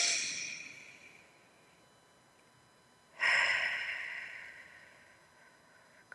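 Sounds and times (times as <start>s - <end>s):
deep slow belly breath in through the nose and out through the mouth: 3.2s - 6.1s.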